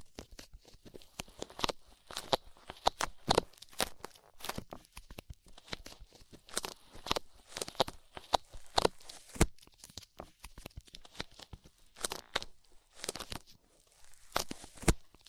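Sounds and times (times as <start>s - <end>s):
crisp clicks and crackles of ear cleaning with rhinestones and clay: 0.0s - 15.2s.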